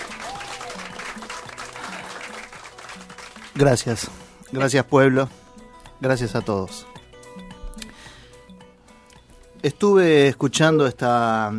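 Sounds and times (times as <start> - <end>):
crowd applause: 0.0 - 3.7
speech: 3.6 - 5.4, 6.0 - 6.9, 9.6 - 11.5.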